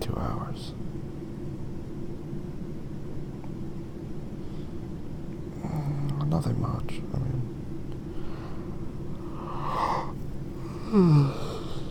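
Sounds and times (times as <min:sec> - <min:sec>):
steady low noise: 0:00.0 - 0:11.9
speech: 0:06.3 - 0:07.6, 0:10.9 - 0:11.4
person yawning: 0:09.4 - 0:11.9.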